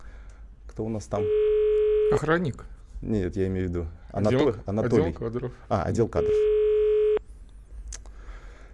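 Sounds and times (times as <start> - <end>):
speech: 0.8 - 6.6
steady buzzing phone ringback tone: 1.2 - 2.2, 6.2 - 7.2.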